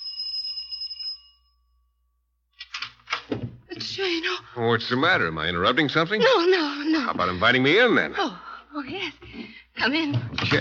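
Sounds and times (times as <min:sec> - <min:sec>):
doorbell ringing with bright metallic tone: 0:00.0 - 0:02.2
speech: 0:03.9 - 0:10.5.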